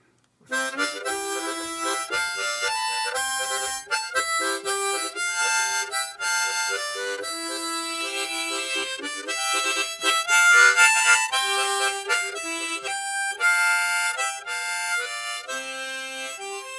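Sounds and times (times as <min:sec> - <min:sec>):
harmonica tune played with tongue-blocked noting: 0:00.5 - 0:16.7.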